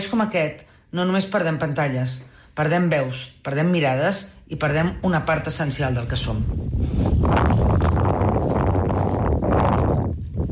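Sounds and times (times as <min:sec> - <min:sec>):
speech: 0:00.1 - 0:07.7
strong wind roaring against the microphone in Ilulissat Greenland: 0:06.1 - 0:10.4.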